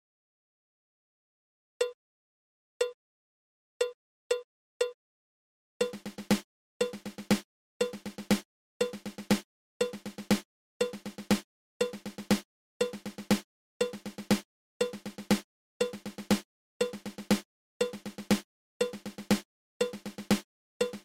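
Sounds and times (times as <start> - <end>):
drum five stroke roll: 5.8 - 21.0.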